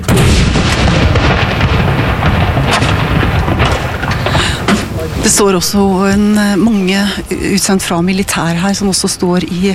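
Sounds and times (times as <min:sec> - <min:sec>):
ceremonial cannon salute firing: 0:00.1 - 0:05.7
speech: 0:05.4 - 0:09.7.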